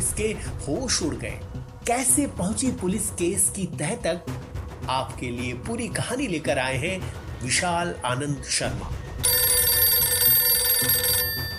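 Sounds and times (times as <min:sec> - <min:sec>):
speech: 0:00.2 - 0:09.3
telephone bell ringing at a police station in Delhi: 0:09.2 - 0:11.5.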